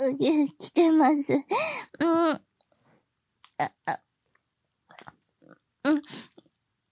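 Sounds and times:
speech: 0.0s - 2.5s, 3.6s - 4.0s, 5.8s - 6.3s
person chewing and eating a beef bowl: 4.2s - 6.8s.

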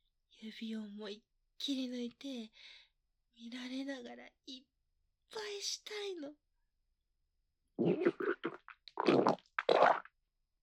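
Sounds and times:
speech: 0.4s - 2.8s, 3.4s - 4.7s, 5.3s - 6.4s
sputtering farts: 7.8s - 10.1s.

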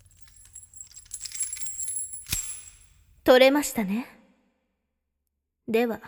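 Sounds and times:
keys jangling as they are picked up: 0.0s - 3.2s
speech: 3.3s - 4.2s, 5.7s - 6.0s.

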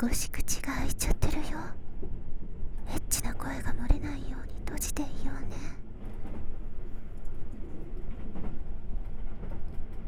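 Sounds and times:
speech: 0.0s - 1.8s, 2.9s - 5.9s
train carriage rolling on rails heard from inside the train: 5.9s - 10.0s.

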